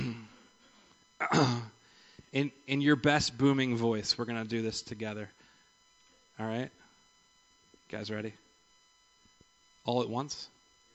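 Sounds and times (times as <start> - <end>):
congregation at a church service clearing their throats: 0.0 - 0.4, 1.2 - 1.8
speech: 1.3 - 1.6, 2.3 - 5.4, 6.4 - 6.8, 7.9 - 8.4, 9.8 - 10.5.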